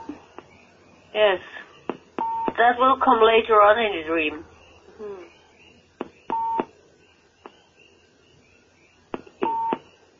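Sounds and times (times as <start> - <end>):
odd electronic beeping with short steady tones: 0.0 - 3.0, 3.8 - 10.1
faint hum: 0.0 - 10.1
speech: 1.2 - 1.7, 2.6 - 5.2
brief murmur of a voice: 5.0 - 5.3.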